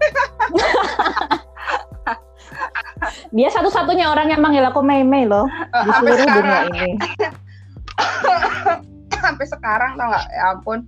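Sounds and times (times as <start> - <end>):
laughter: 0.0 - 3.2, 5.6 - 7.4, 8.0 - 8.8
speech: 3.4 - 7.2, 9.7 - 10.8
harsh raspy coughing fit: 7.9 - 8.8.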